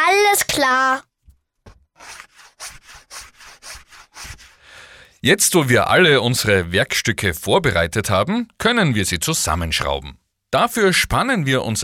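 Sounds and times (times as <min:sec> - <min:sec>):
speech: 0:00.6 - 0:01.1, 0:05.2 - 0:11.8
sandpaper rubbing over edges of wooden feet: 0:02.0 - 0:04.6.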